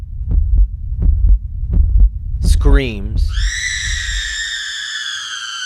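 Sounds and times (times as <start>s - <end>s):
constant low hum: 0.0s - 4.2s
heartbeat thumping in deep low double beats: 0.0s - 4.4s
speech: 2.6s - 3.6s.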